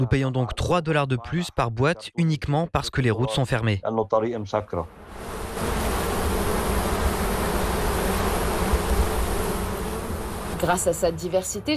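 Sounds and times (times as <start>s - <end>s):
speech: 0.0s - 5.8s, 10.6s - 11.7s
many bees buzzing: 4.9s - 11.7s.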